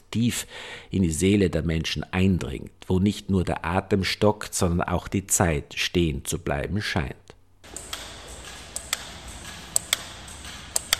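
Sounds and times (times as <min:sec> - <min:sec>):
faint hiss: 0:00.0 - 0:10.9
speech: 0:00.1 - 0:07.3
simple wall clocks with black dials ticking in an exhibition room: 0:07.6 - 0:10.9.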